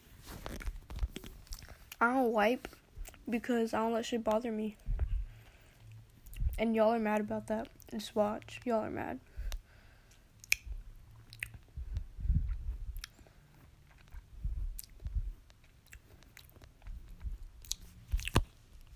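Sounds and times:
wet chewing of food: 0.6 - 2.0, 9.5 - 18.9
speech: 2.0 - 4.8, 6.6 - 9.3.

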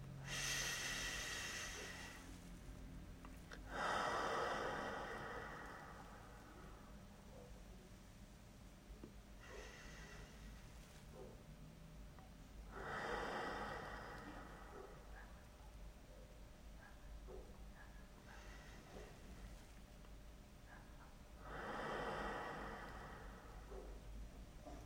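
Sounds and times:
slow deep breaths in through the nose and out through the mouth: 0.0 - 7.8, 8.9 - 11.4, 12.2 - 24.8.

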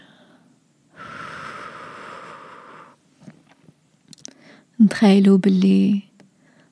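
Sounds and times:
slow airy breathing: 0.0 - 3.6, 4.2 - 4.8
soft mouth clicks: 3.2 - 4.4
speech: 4.8 - 6.1.

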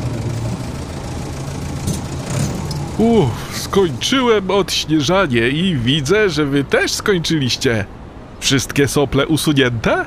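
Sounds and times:
tractor engine droning between buildings: 0.0 - 6.0
speech: 3.0 - 10.0.

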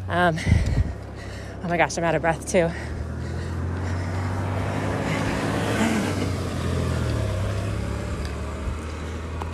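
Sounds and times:
broadband road noise: 0.0 - 9.5
car engine rumbling: 0.0 - 9.5
speech: 0.1 - 0.9, 1.6 - 2.9.

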